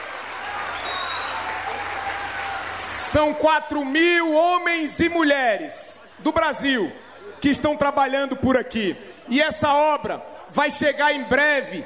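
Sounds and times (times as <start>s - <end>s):
crowd applause at a public event honoring railway construction workers: 0.0s - 3.4s
speech: 3.1s - 11.8s.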